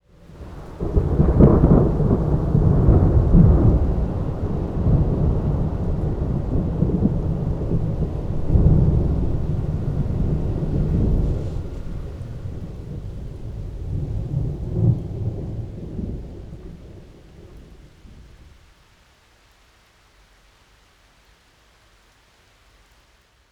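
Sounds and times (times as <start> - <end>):
thunderstorm: 0.0 - 18.6.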